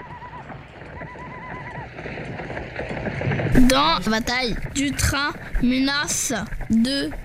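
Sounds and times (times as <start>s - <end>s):
horses ridden by attackers charging a train galloping: 0.0s - 7.2s
speech: 3.6s - 7.2s.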